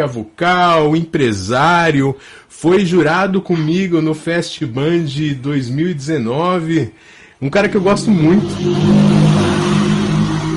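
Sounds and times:
speech: 0.0 - 9.2
motorcycle engine droning past outside: 7.8 - 10.5.

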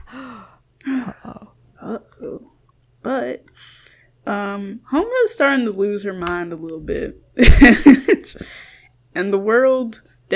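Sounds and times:
person gasping theatrically: 0.0 - 1.5, 8.4 - 8.9
speech: 3.0 - 3.7, 4.3 - 10.3.

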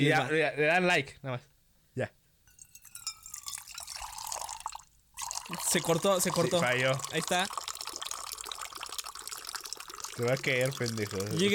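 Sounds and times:
speech: 0.0 - 2.2, 5.5 - 7.6, 10.2 - 11.5
water dripping and trickling: 2.6 - 11.5
gush of running water: 5.2 - 11.5.

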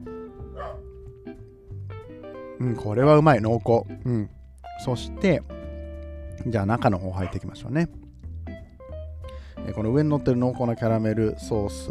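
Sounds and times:
dog barking: 0.6 - 0.9, 7.2 - 7.5
speech: 2.6 - 5.6, 6.4 - 8.0, 9.7 - 11.8.

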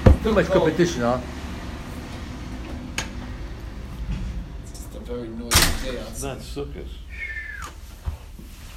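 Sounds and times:
speech: 0.2 - 1.4, 5.1 - 7.3
door shutting with a solid thud: 5.4 - 6.2.

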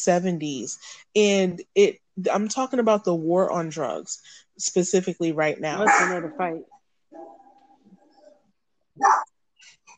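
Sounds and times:
speech: 0.0 - 7.4, 9.0 - 9.3
small dog barking: 5.8 - 6.3, 9.0 - 9.3.

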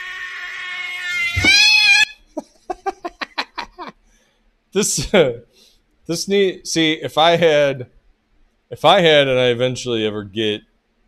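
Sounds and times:
cat yowling and crying: 0.0 - 2.2
laughter: 2.3 - 3.9
speech: 4.7 - 5.5, 6.1 - 8.0, 8.7 - 10.7.

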